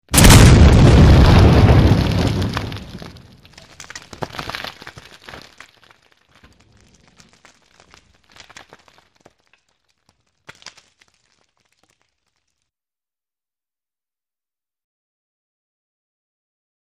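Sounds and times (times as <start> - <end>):
bunker explosion: 0.1 - 5.4.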